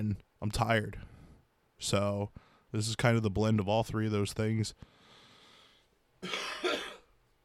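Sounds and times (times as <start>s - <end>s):
speech: 0.0s - 1.1s, 1.8s - 5.0s, 6.2s - 6.6s
person coughing harshly: 6.2s - 7.2s.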